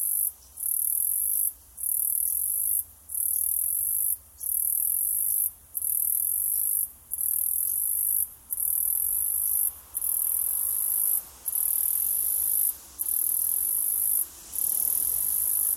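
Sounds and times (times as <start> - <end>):
Australian cicada call: 0.0 - 15.7.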